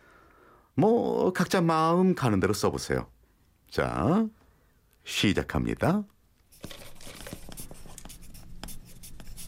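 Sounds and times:
speech: 0.8s - 4.4s, 5.0s - 6.8s
pen scratching on paper writing a poem: 6.5s - 9.4s.

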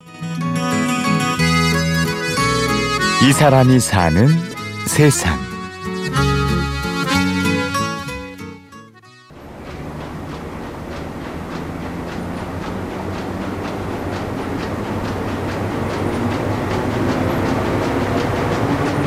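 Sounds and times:
music: 0.0s - 9.3s
printing press running in print shop: 0.2s - 8.1s, 9.3s - 19.0s
speech: 3.2s - 5.4s.

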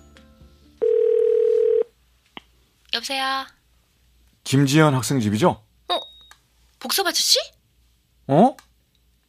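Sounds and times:
telephone ringback tone: 0.8s - 1.9s
speech: 3.0s - 3.6s, 4.5s - 6.0s, 6.8s - 7.6s, 8.3s - 8.6s.

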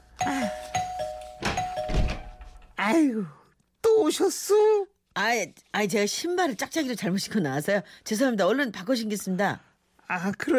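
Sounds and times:
doorbell ringing with sustained electronic chime tone: 0.1s - 2.6s
speech: 2.9s - 3.4s, 4.0s - 10.5s.

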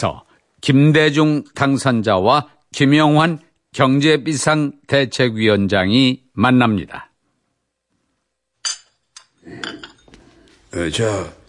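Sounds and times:
speech: 0.0s - 7.1s, 10.7s - 11.4s
soft clattering and shuffling of crockery: 8.6s - 10.2s
teacups clinking as tea is served: 8.6s - 10.6s.

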